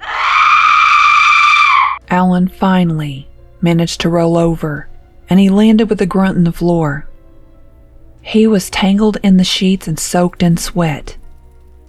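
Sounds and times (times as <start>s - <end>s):
woman screaming: 0.0s - 2.0s
speech: 2.1s - 7.1s, 8.2s - 11.2s.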